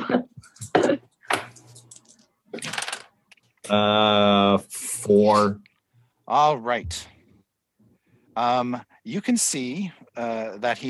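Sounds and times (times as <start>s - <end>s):
percentile dice rolled during a tabletop role-playing game: 2.0s - 3.1s
speech: 3.7s - 4.4s, 5.1s - 5.7s, 6.3s - 7.1s, 8.4s - 10.8s.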